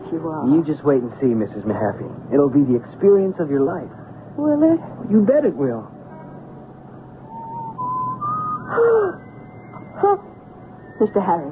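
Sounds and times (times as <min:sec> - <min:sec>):
low hum: 0:00.0 - 0:11.5
speech: 0:00.1 - 0:06.0, 0:11.0 - 0:11.5
person whistling soft steady notes stepping upward in pitch: 0:07.3 - 0:11.2
squeaky whimper-like chirps: 0:07.3 - 0:11.5.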